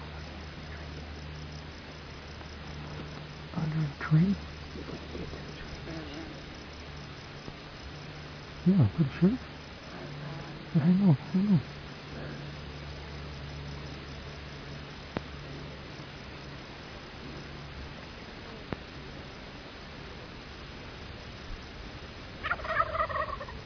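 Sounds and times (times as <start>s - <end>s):
steady outdoor hiss of insects: 0.0s - 23.6s
speech: 3.9s - 5.4s, 8.7s - 9.5s, 10.8s - 11.8s
wild turkey gobbling: 22.4s - 23.6s.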